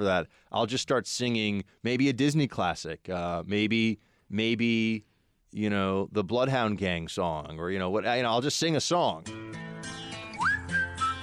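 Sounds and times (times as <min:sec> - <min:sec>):
speech: 0:00.0 - 0:10.0
person whistling a short tune: 0:10.3 - 0:11.2.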